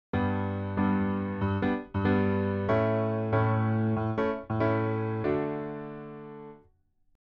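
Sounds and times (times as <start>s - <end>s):
piano in stereo: 0.0s - 6.7s.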